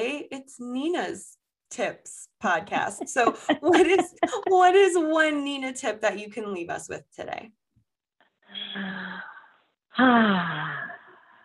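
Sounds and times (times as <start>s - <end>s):
speech: 0.2s - 7.6s, 8.5s - 9.3s, 10.0s - 10.9s
laughter: 3.0s - 4.6s
deep breath with long voiced sigh: 8.5s - 11.4s.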